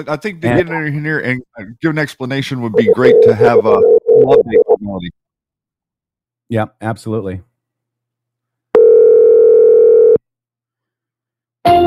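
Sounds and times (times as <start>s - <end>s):
speech: 0.0s - 5.2s, 6.5s - 7.5s
telephone call tone: 2.8s - 4.8s, 8.8s - 10.2s.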